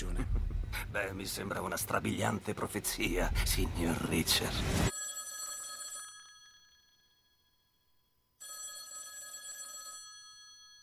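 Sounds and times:
speech: 0:01.0 - 0:04.9
old-fashioned telephone bell ringing: 0:04.9 - 0:07.8, 0:08.4 - 0:10.8.

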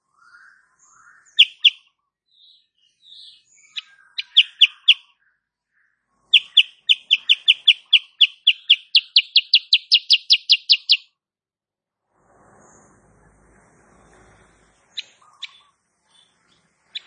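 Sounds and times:
female sooty-headed bulbul cage bird chirping: 0:01.4 - 0:01.8, 0:03.7 - 0:05.0, 0:06.3 - 0:11.1, 0:14.9 - 0:16.3.

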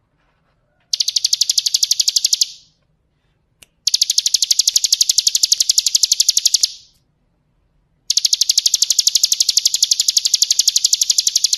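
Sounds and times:
Bar-winged Prinia giving rapid high trills of pulsed notes: 0:00.9 - 0:02.7, 0:03.9 - 0:06.9, 0:08.1 - 0:11.5.

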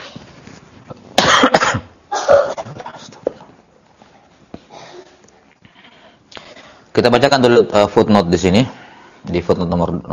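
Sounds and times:
person coughing during a lecture: 0:01.2 - 0:03.1
speech: 0:07.0 - 0:10.1.

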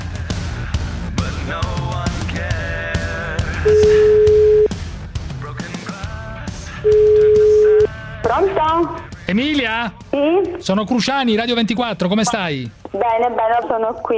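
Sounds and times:
music: 0:00.0 - 0:14.1
outgoing phone call ringing through to a beautician in her shop: 0:03.7 - 0:04.7, 0:06.9 - 0:07.9
speech: 0:08.8 - 0:14.1.

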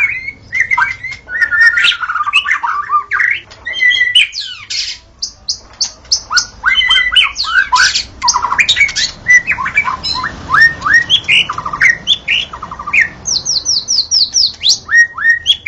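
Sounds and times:
wild white-rumped shama song: 0:00.0 - 0:15.6.

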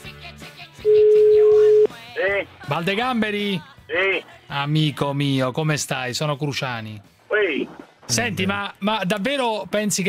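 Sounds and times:
mid-pitched telephone ringback tone: 0:00.8 - 0:01.9
speech: 0:02.4 - 0:10.0.

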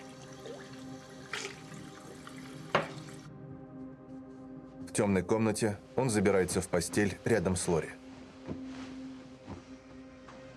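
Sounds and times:
leftover water from a drinking glass poured into a bathroom sink: 0:00.0 - 0:03.2
speech: 0:05.0 - 0:08.6.

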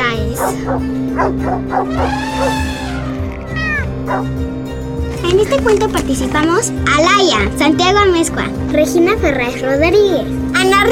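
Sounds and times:
dog barking and whining: 0:00.4 - 0:02.7, 0:03.4 - 0:04.3
speech: 0:00.4 - 0:02.7, 0:04.1 - 0:10.9.

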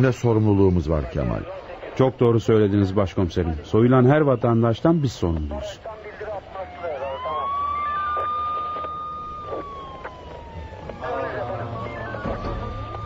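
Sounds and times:
speech: 0:00.0 - 0:06.0
ambulance siren wailing as it arrives: 0:05.6 - 0:13.0.

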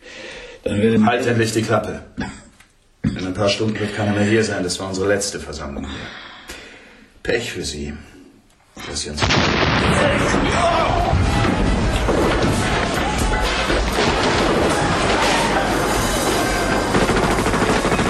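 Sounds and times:
speech: 0:00.6 - 0:02.4, 0:03.4 - 0:06.3, 0:07.2 - 0:08.1, 0:08.8 - 0:11.2
explosion blowing a hole in a freshly built brick wall: 0:09.2 - 0:18.0
rumbling debris and crackling: 0:09.2 - 0:18.0.

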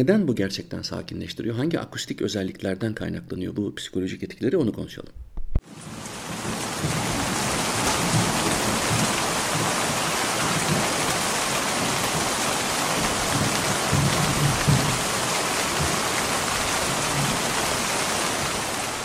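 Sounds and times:
speech: 0:00.0 - 0:06.4
hard rain pouring: 0:05.6 - 0:19.0.

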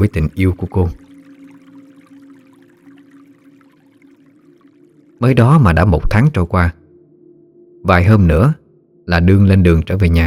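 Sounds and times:
speech: 0:00.0 - 0:01.0, 0:05.2 - 0:06.8, 0:07.8 - 0:10.2
stream murmuring and trickling: 0:00.0 - 0:06.6.

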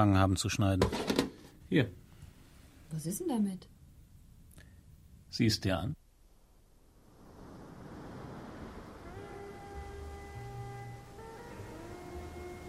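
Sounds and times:
speech: 0:00.0 - 0:02.0, 0:02.9 - 0:03.8, 0:05.3 - 0:06.0
large ocean surf breaking: 0:07.0 - 0:10.3
sustained musical tones: 0:08.9 - 0:12.6.

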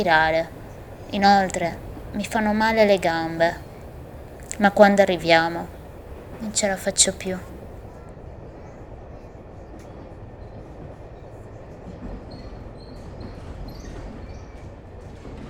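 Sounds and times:
speech: 0:00.0 - 0:03.6, 0:04.6 - 0:05.8, 0:06.4 - 0:07.6
train wheels rumbling on track: 0:00.0 - 0:07.9.

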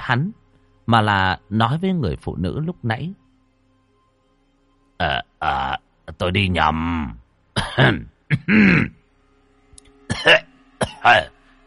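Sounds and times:
speech: 0:00.1 - 0:03.2, 0:05.0 - 0:09.0, 0:10.1 - 0:11.4
elderly man raspy coughing: 0:07.6 - 0:09.0, 0:10.1 - 0:11.3.

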